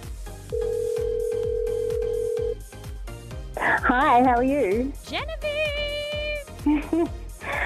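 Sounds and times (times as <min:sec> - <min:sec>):
rhythmic music with a thumping beat: 0:00.0 - 0:07.6
steady telephone ring tone: 0:00.5 - 0:02.6
speech: 0:03.9 - 0:05.8, 0:06.6 - 0:07.2.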